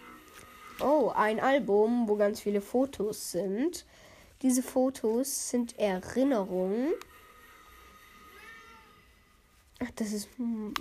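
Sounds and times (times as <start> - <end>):
speech: 0.8 - 7.1, 9.8 - 10.8
cat meowing: 8.2 - 9.0.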